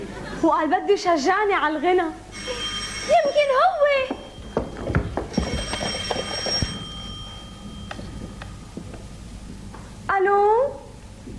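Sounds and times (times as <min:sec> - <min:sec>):
speech: 0:00.4 - 0:04.2
telephone ringing: 0:02.3 - 0:09.2.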